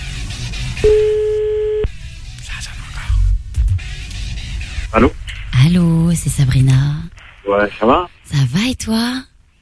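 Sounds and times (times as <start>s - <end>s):
telephone ringback tone of an outgoing call: 0.9s - 1.9s
speech: 4.9s - 9.3s.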